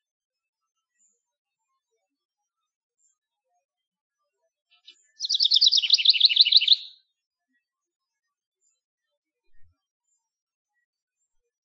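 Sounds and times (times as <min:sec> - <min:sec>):
male house wren singing: 0:04.9 - 0:07.0.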